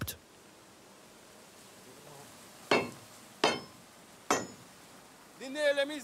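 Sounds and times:
crowbar used as hammer driving loose nails into railway rails during a bridge inspection: 2.7s - 3.7s, 4.3s - 4.6s.

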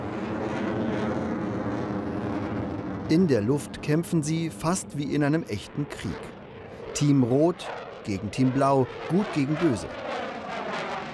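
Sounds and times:
jet engine roar from fighter jets taxiing to takeoff: 0.0s - 11.1s
speech: 3.1s - 6.4s, 7.0s - 10.3s.

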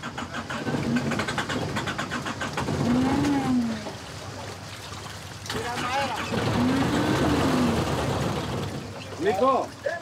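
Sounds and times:
boat engine cranking without starting: 0.0s - 3.8s, 5.5s - 9.2s
speech: 9.4s - 9.8s.

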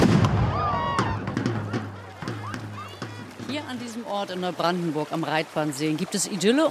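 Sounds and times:
sharp cannon-like bangs at a lakeside event: 0.0s - 1.7s
speech: 3.7s - 6.6s.

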